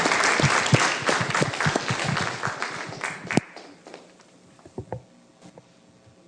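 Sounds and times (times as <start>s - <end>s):
crowd applauding a speaker: 0.0s - 4.1s.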